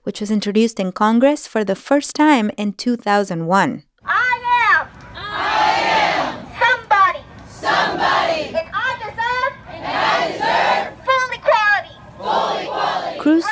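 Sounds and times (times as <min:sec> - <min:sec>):
speech: 0:00.1 - 0:03.9
large crowd of young immigrants chanting at a rally before the Capitol: 0:04.4 - 0:13.5.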